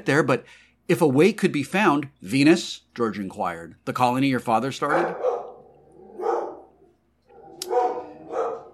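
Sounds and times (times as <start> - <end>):
speech: 0.0 - 5.3
dogs barking: 4.8 - 8.7.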